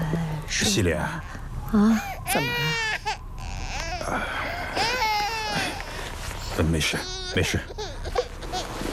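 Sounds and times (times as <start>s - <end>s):
speech: 0.1s - 3.0s, 4.1s - 4.9s, 6.6s - 7.8s
baby crying: 1.8s - 8.8s.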